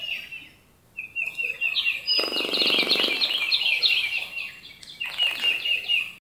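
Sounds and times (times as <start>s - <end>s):
bird song of fast high twittering and trilled notes: 0.0s - 6.1s.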